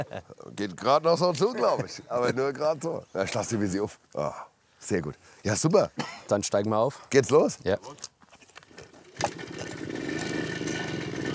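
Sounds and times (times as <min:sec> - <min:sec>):
speech: 0:00.0 - 0:08.1
motorcycle engine idling and revved with throttle: 0:09.2 - 0:11.3.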